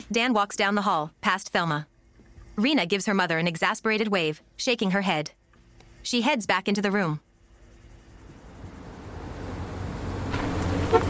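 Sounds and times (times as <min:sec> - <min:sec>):
speech: 0:00.0 - 0:01.9, 0:02.6 - 0:05.4, 0:06.0 - 0:07.2
car pulling up with low engine hum: 0:07.7 - 0:11.0.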